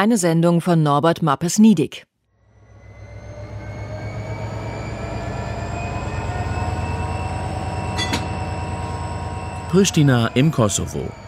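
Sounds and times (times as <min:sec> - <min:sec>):
speech: 0:00.0 - 0:02.1, 0:09.7 - 0:11.2
train metallic squeal or clank: 0:02.4 - 0:11.2
train wheels clattering on rails: 0:07.8 - 0:09.0.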